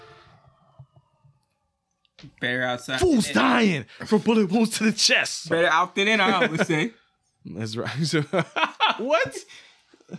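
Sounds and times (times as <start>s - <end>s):
emergency vehicle sirens wailing: 0.0s - 2.4s
speech: 2.2s - 9.7s.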